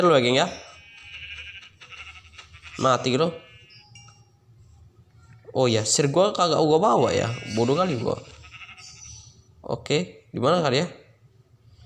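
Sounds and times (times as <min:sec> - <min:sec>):
speech: 0:00.0 - 0:00.6, 0:02.8 - 0:03.4, 0:05.5 - 0:08.4, 0:09.6 - 0:11.0
faint outdoor noise: 0:00.0 - 0:11.8
sheep bleating: 0:00.5 - 0:03.9, 0:07.0 - 0:09.4.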